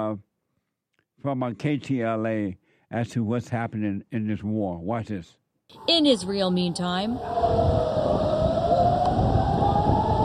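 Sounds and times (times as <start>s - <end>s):
speech: 0.0s - 0.3s, 1.2s - 8.2s
air-raid sirens wailing in Israel during a rocket attack: 5.7s - 10.2s.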